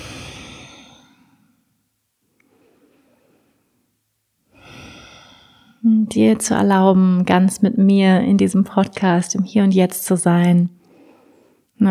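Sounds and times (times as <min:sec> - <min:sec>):
slow deep breath in and out during a guided breathing exercise: 0:00.0 - 0:01.8, 0:02.4 - 0:03.8, 0:04.5 - 0:05.8, 0:10.8 - 0:11.7
speech: 0:05.9 - 0:10.8.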